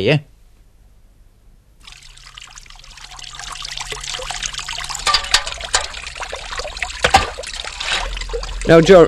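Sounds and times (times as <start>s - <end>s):
speech: 0.0s - 0.3s, 8.7s - 9.0s
water trickling and splashing from a mountain source: 1.8s - 9.0s.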